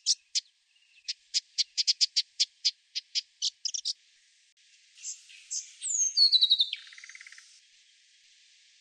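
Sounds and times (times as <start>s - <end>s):
brown thornbill ticking and warbling in a garden in Canberra Australia: 0.0s - 4.0s, 5.0s - 7.5s.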